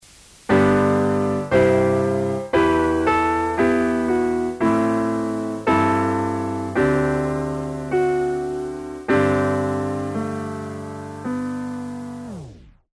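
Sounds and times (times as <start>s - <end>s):
Steinway D grand piano with lo-fi sound: 0.0s - 12.9s.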